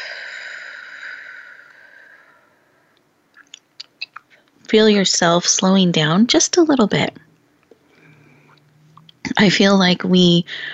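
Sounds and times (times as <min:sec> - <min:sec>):
slow breath in through the nose and out through the mouth: 0:00.0 - 0:03.0, 0:07.8 - 0:08.8, 0:10.5 - 0:10.7
speech: 0:04.7 - 0:07.2, 0:09.4 - 0:10.7.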